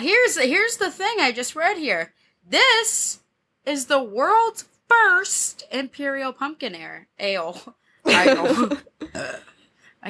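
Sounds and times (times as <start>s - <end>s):
speech: 0.0s - 10.0s
loud burps: 8.4s - 9.6s.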